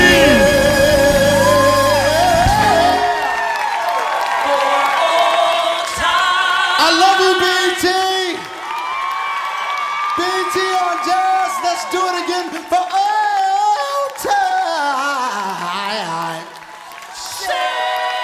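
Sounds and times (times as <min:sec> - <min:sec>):
large crowd screaming and cheering in a room at night: 0:00.0 - 0:18.1.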